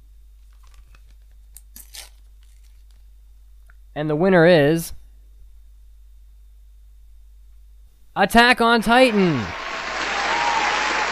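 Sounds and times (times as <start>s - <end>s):
low steady hum: 0.0s - 11.1s
paper envelope torn open at an award show: 1.8s - 3.0s
speech: 4.0s - 5.0s, 8.2s - 9.6s.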